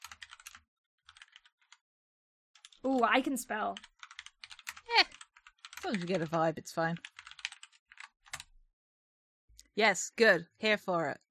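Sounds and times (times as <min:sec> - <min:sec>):
computer keyboard typing: 0:00.0 - 0:01.8, 0:02.6 - 0:06.4, 0:07.0 - 0:08.5
speech: 0:02.8 - 0:03.9, 0:05.8 - 0:07.2, 0:09.8 - 0:11.2.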